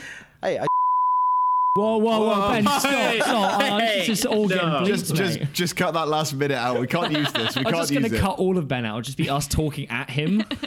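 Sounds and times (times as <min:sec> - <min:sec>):
speech: 0:00.4 - 0:00.7, 0:01.8 - 0:10.6
high-pitched pure bleep censor tone: 0:00.7 - 0:01.8
laughter: 0:02.2 - 0:05.6, 0:06.6 - 0:08.3, 0:10.2 - 0:10.6.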